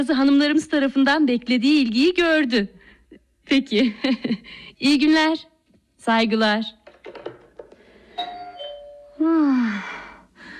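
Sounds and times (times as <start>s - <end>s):
speech: 0.0s - 2.8s, 3.5s - 7.2s, 9.2s - 10.0s
faint room noise: 0.0s - 10.5s
two-tone doorbell chime: 8.1s - 9.2s.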